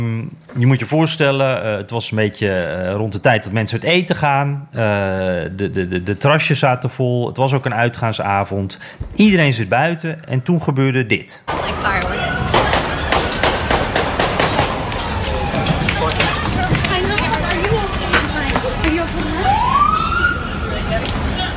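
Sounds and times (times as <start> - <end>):
speech: 0.0 - 12.5
siren: 11.5 - 16.9, 19.2 - 21.0
people running: 11.5 - 20.0
crowd murmuring on a busy street: 11.5 - 21.5
gunshots on a busy street: 12.4 - 16.5.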